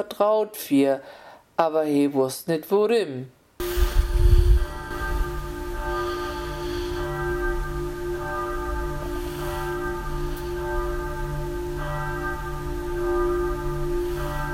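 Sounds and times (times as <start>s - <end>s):
speech: 0.0s - 3.4s
church bell ringing: 3.6s - 14.5s.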